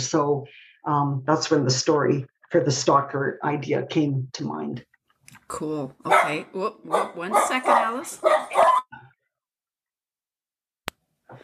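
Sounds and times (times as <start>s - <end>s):
speech: 0.0s - 4.9s, 5.5s - 8.8s
dog barking: 6.1s - 9.0s.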